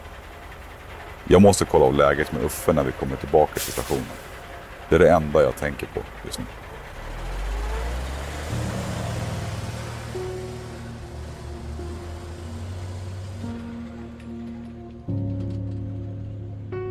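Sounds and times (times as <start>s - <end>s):
car engine droning and shifting gears: 0.0s - 15.9s
car road rumble: 0.0s - 16.8s
speech: 1.3s - 4.3s, 4.9s - 6.7s.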